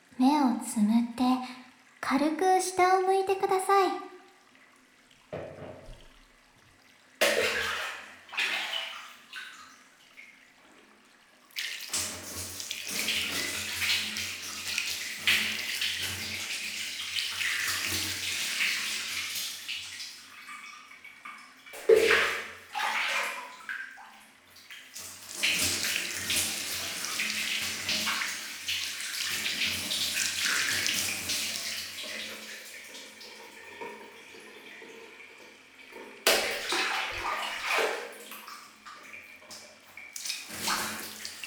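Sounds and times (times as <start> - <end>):
speech: 0.2 - 1.2, 2.1 - 4.1
rinsing water poured over a person being bathed: 7.2 - 10.4, 11.5 - 20.6, 21.8 - 35.0, 36.1 - 41.4.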